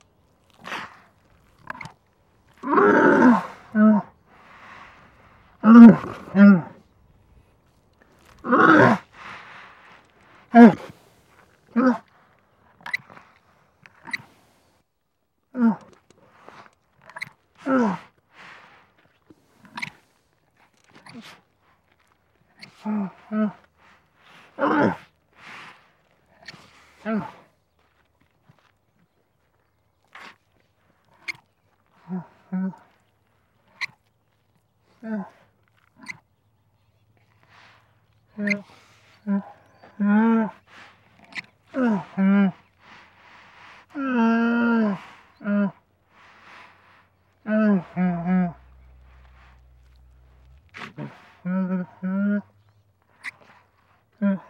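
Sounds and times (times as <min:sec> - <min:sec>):
camel sad moans: 0:00.5 - 0:12.4, 0:17.1 - 0:18.1, 0:20.8 - 0:25.2, 0:26.0 - 0:27.5, 0:31.1 - 0:33.0, 0:34.9 - 0:36.2, 0:37.3 - 0:54.4.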